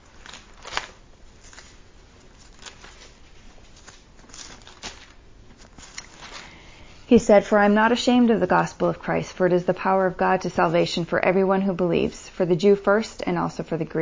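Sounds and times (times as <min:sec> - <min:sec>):
pages of a Bible flipped quickly: 0:00.0 - 0:06.6
quiet hiss: 0:00.0 - 0:14.0
speech: 0:07.1 - 0:14.0.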